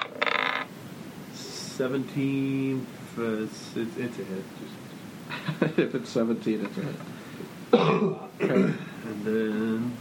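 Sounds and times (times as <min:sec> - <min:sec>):
dice rattling and tumbling across a tabletop: 0:00.0 - 0:00.7
speech: 0:01.8 - 0:04.9, 0:05.7 - 0:07.1, 0:07.7 - 0:09.9.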